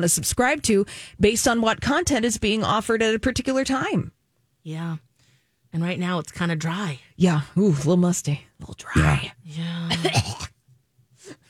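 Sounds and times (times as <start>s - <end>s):
speech: 0.0s - 5.1s, 5.7s - 10.4s
rough raspy throaty cough: 9.9s - 10.6s.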